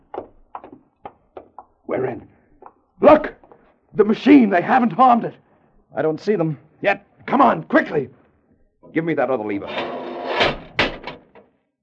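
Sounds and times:
speech: 0:01.9 - 0:02.4, 0:03.0 - 0:03.4, 0:04.0 - 0:08.2, 0:08.9 - 0:09.9
doors swinging shut: 0:09.7 - 0:11.6.

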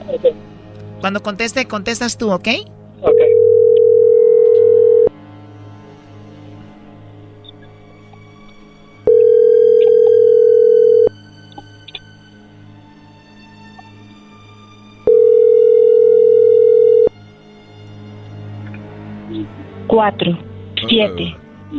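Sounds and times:
speech: 0:00.2 - 0:03.4, 0:20.0 - 0:21.7
telephone ringback tone during unanswered call: 0:03.1 - 0:05.1, 0:09.1 - 0:11.1, 0:15.1 - 0:17.1.

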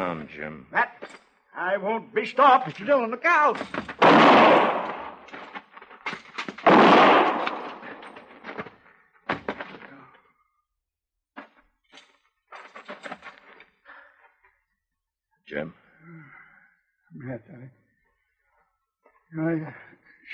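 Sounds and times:
speech: 0:00.0 - 0:04.8
quieter cracks and thuds: 0:03.6 - 0:08.7
shotgun blasts in a shootout: 0:04.0 - 0:05.3, 0:06.6 - 0:08.1.

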